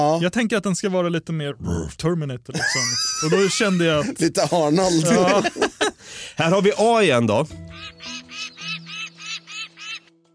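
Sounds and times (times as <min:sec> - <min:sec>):
speech: 0:00.0 - 0:08.2
laughter: 0:02.5 - 0:06.9
gull-like bird cry: 0:07.6 - 0:10.1.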